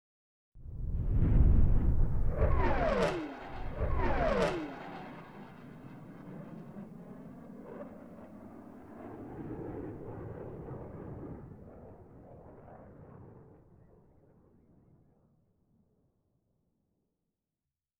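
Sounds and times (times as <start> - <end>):
FA-18 jet flyover: 0.7 - 13.4.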